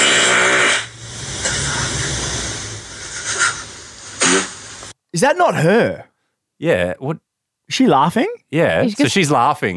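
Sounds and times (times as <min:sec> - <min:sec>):
low buzzy fart in played recording: 0:00.0 - 0:02.0, 0:04.2 - 0:04.6
steady airy hiss: 0:00.0 - 0:05.0
speech: 0:05.2 - 0:09.7.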